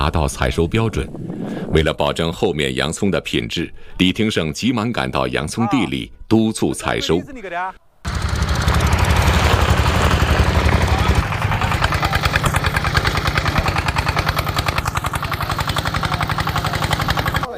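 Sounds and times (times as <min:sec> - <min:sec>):
speech: 0:00.0 - 0:07.8
farm tractor diesel engine running during an onion harvest: 0:08.1 - 0:17.5.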